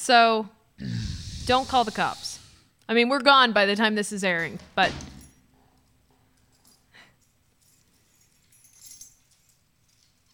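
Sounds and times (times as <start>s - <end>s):
speech: 0.0s - 2.2s, 2.9s - 5.1s
keys jangling: 5.1s - 10.3s.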